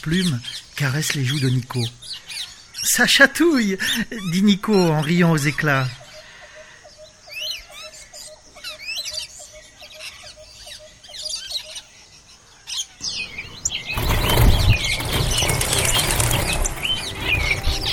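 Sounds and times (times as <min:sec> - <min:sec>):
speech: 0:00.0 - 0:06.0
many birds chirping and tweeting: 0:00.0 - 0:17.9
flock of birds flapping wings taking off: 0:13.3 - 0:17.9.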